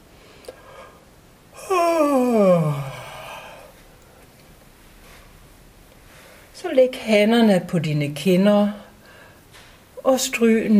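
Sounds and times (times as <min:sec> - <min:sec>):
person yawning while stretching during a voice warm-up: 0:01.6 - 0:03.8
speech: 0:06.7 - 0:08.8, 0:10.1 - 0:10.7.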